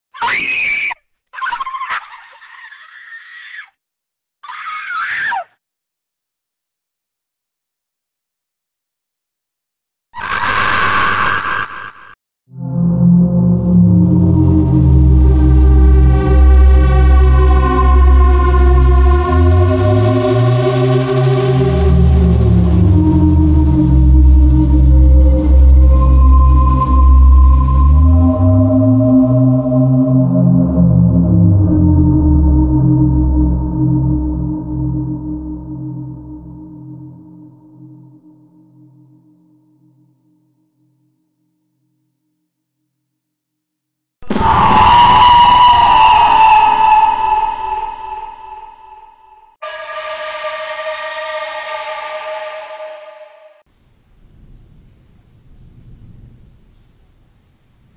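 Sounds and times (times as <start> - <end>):
scary horror sound effects: 10.2 - 37.9, 44.2 - 53.7.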